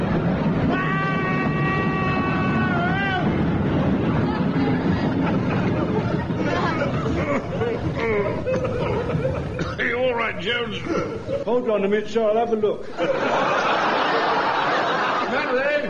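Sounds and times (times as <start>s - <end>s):
train passing by: 0.0s - 11.7s, 12.9s - 15.8s
voices: 0.7s - 12.9s
laughter: 3.8s - 11.7s, 12.8s - 15.8s
speech: 10.4s - 13.5s.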